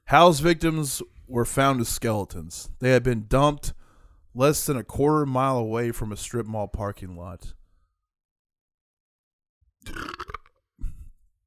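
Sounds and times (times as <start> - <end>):
speech: 0.1 - 3.8, 4.4 - 7.6, 9.8 - 10.2
burp: 9.8 - 11.0.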